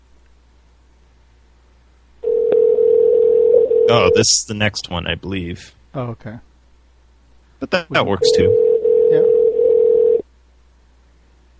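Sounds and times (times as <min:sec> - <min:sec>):
telephone dial tone while calling someone back: 0:02.2 - 0:03.9, 0:08.5 - 0:10.2
speech: 0:03.9 - 0:06.5, 0:07.6 - 0:09.4.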